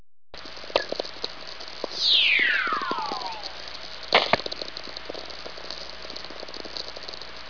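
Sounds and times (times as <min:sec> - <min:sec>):
VLF radio signal: 0:01.9 - 0:04.0.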